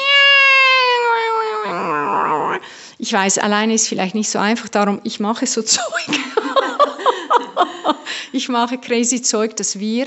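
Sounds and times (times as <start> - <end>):
person imitating a cat meow: 0.0 - 2.6
speech: 3.1 - 10.0
laughter: 5.9 - 8.3.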